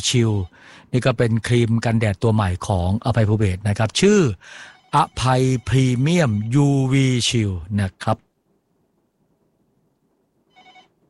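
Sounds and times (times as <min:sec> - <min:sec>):
speech: 0:00.0 - 0:08.3
telephone ringing as a listener calls in: 0:04.6 - 0:06.5, 0:10.5 - 0:11.0.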